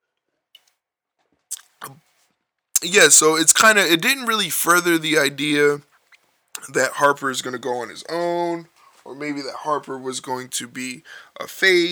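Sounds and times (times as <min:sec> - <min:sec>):
sipping a drink: 0:01.5 - 0:02.0, 0:02.8 - 0:05.7
swallowing: 0:01.5 - 0:02.0, 0:02.8 - 0:03.8
speech: 0:02.8 - 0:05.9, 0:06.7 - 0:11.9.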